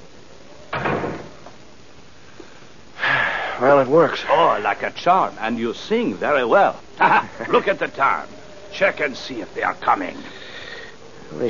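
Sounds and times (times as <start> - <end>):
door pushed shut with a soft whooshing thud: 0.7 - 1.6
speech: 3.6 - 10.4
laughter: 7.0 - 8.3.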